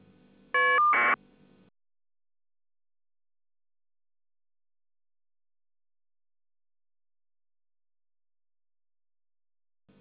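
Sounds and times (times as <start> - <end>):
FSK data tones: 0.6 - 1.2.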